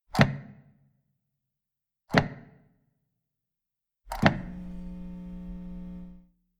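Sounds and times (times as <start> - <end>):
plug being plugged in: 4.1 - 5.6.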